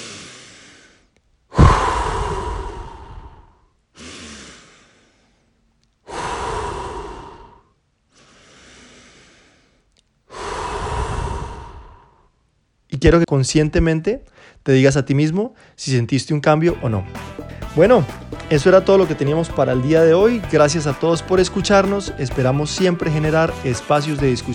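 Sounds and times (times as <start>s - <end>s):
deep breaths, inhaling through nose, exhaling through mouth: 0.0s - 12.5s, 14.3s - 14.7s, 15.5s - 15.8s, 17.2s - 17.8s
speech: 13.0s - 24.5s.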